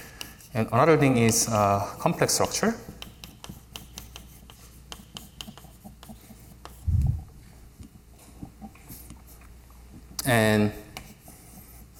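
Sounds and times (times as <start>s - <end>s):
scratchy writing on a board during a mathematics lecture: 0.0s - 6.9s, 8.3s - 9.5s, 10.9s - 11.9s
speech: 0.5s - 2.9s, 10.3s - 10.8s.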